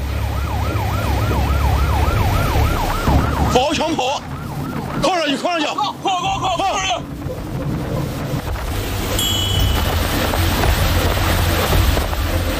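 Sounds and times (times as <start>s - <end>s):
powerful speedboat engines roaring on water: 0.0s - 12.5s
rushing water: 0.0s - 12.5s
wind: 0.0s - 12.5s
law enforcement patrol boat siren wailing: 0.2s - 5.1s.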